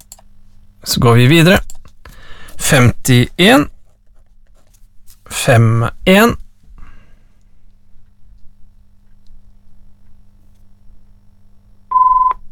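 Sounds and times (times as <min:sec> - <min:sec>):
faint low hum: 0:00.0 - 0:12.5
speech: 0:00.8 - 0:01.7, 0:02.7 - 0:03.8, 0:05.4 - 0:06.4
short loud electronic telephone tone: 0:11.9 - 0:12.4.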